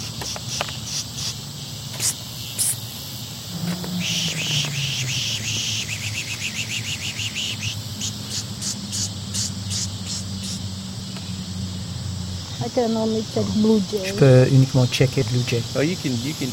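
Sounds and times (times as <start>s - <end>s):
goldfinch chirps and twittering: 0.3s - 14.6s
low rumble: 3.5s - 6.6s
speech: 12.7s - 16.5s.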